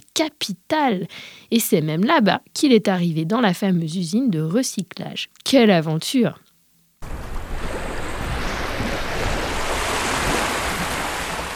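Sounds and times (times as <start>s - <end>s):
speech: 0.2s - 6.4s
sea waves breaking and surging: 7.0s - 11.5s
wind rumble: 7.0s - 11.5s.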